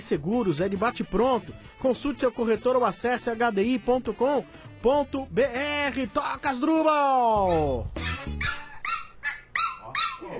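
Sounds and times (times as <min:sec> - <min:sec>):
speech: 0:00.0 - 0:08.5
pinscher dog barking in sharp high-pitched yaps: 0:07.4 - 0:10.3.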